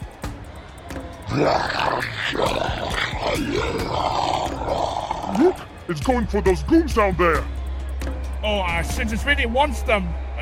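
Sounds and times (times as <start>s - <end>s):
monster roar: 1.3s - 5.7s
speech: 1.3s - 7.6s, 8.4s - 10.2s.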